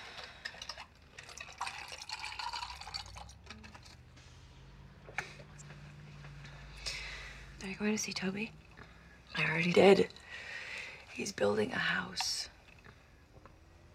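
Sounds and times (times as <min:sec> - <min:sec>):
liquid pouring into a glass: 0:00.0 - 0:03.9
ice cubes clinking in a glass: 0:00.3 - 0:03.8
speech: 0:07.7 - 0:08.6, 0:09.4 - 0:10.2, 0:11.2 - 0:12.5.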